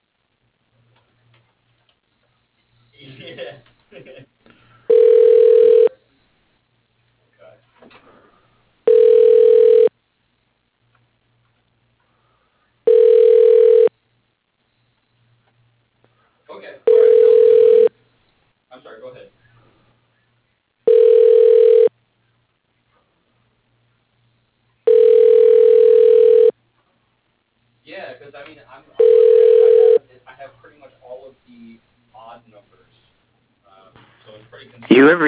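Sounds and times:
telephone ringing tone while a call is transferred: 4.9 - 6.0, 8.9 - 9.9, 12.9 - 13.9, 16.9 - 17.9, 20.9 - 21.9, 24.9 - 26.5, 29.0 - 30.0.

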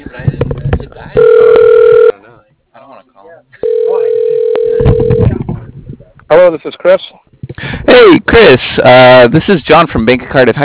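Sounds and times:
telephone line tones as a call is dialed out: 1.2 - 2.2, 3.6 - 5.3
speech: 6.4 - 7.1, 8.1 - 10.6.

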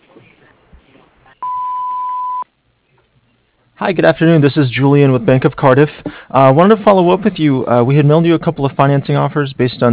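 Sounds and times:
answering-machine beep: 1.4 - 2.4
speech: 3.8 - 9.9.

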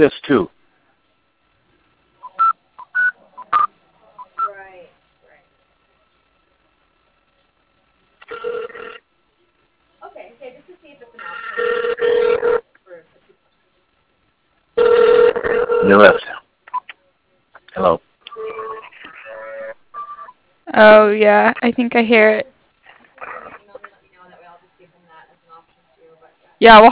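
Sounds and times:
speech: 0.0 - 0.6, 20.8 - 22.5, 26.6 - 26.9
touch-tone dialing on a telephone: 2.2 - 4.5, 18.3 - 20.3
telephone line noise: 8.2 - 9.0, 11.2 - 12.6, 14.8 - 16.3, 18.3 - 20.4.

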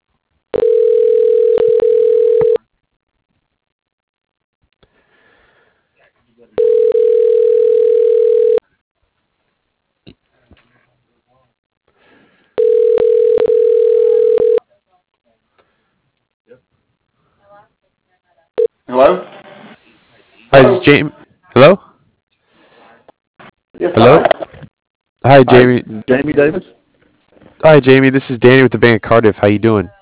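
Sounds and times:
telephone line tone beeps while a call is dialed: 0.6 - 2.6, 6.6 - 8.6, 12.6 - 14.6
speech: 20.9 - 21.8, 23.8 - 24.3, 25.3 - 26.8, 27.6 - 30.0.

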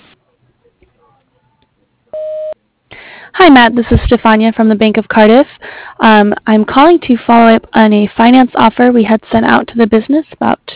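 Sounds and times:
voicemail greeting beep on a phone line: 2.2 - 2.6
speech: 3.4 - 10.7.

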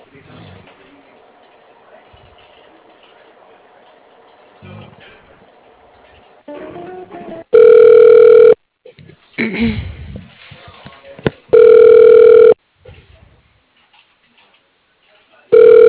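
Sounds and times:
telephone ringback tone as a call is transferred to a voicemail extension: 7.5 - 8.6, 11.5 - 12.6, 15.5 - 15.8.

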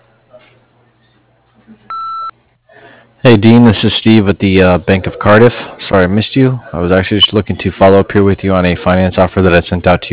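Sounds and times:
electronic answering machine beep: 1.9 - 2.3
thin humming phone line noise: 1.9 - 2.3
speech: 3.2 - 10.1.

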